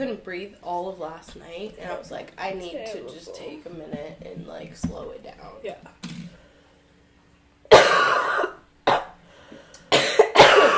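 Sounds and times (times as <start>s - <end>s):
speech: 0.0s - 6.2s
harsh broadband coughs close to the mic: 7.7s - 9.2s, 9.9s - 10.7s.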